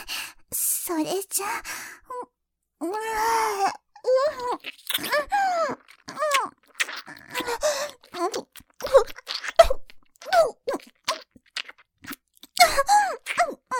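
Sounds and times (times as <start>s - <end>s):
speech: 0.9s - 1.8s, 2.8s - 5.8s
breathy vocal moans and sighs: 1.5s - 9.2s, 12.6s - 13.7s
person biting and chewing crunchy salty food: 4.4s - 13.6s.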